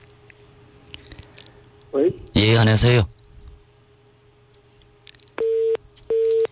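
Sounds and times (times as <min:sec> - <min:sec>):
faint low hum: 0:00.0 - 0:06.5
speech: 0:01.9 - 0:03.1
telephone busy tone beeps after a caller's line drops: 0:05.4 - 0:06.5.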